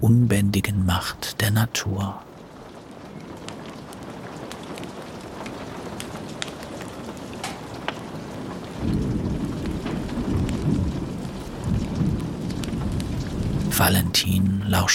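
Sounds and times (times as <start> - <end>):
deep rolling rumble of thunder: 0.0 - 14.9
rain pattering: 0.0 - 14.9
speech: 1.0 - 2.3, 13.8 - 14.9.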